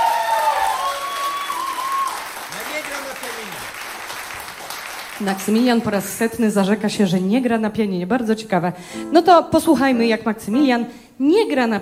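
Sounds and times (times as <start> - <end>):
audience clapping for a young musician: 0.0 - 5.8
speech: 5.2 - 11.7.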